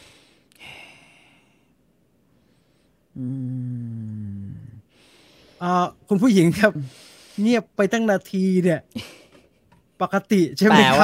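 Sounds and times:
person imitating heavy breathing on a phone line: 3.1 - 5.2
speech: 3.2 - 3.4, 5.6 - 9.2, 10.0 - 11.0.

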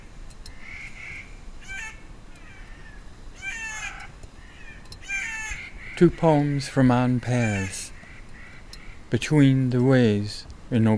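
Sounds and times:
family of Clark's nutcrackers Nucifraga columbiana counter-singing rasping calls: 0.0 - 9.5
speech: 6.0 - 7.9, 9.1 - 10.9.

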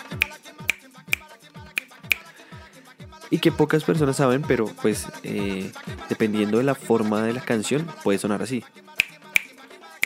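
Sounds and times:
sharp bright clicks tapping a son clave pattern: 1.9 - 2.3, 9.0 - 10.0
speech: 3.3 - 8.9.

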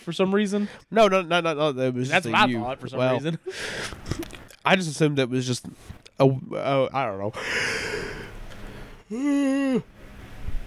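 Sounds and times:
speech: 0.0 - 8.0, 9.1 - 9.9
person yawning: 9.1 - 9.9.

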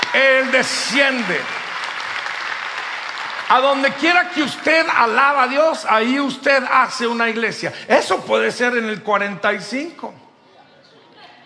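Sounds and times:
audience applauding loudly: 0.0 - 5.9
speech: 0.2 - 1.6, 3.5 - 10.2.

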